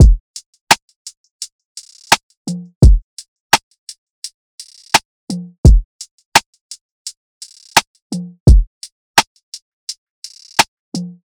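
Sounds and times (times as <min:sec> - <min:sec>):
drum loop: 0:00.0 - 0:00.5, 0:01.8 - 0:03.0, 0:05.6 - 0:06.1, 0:07.4 - 0:08.8.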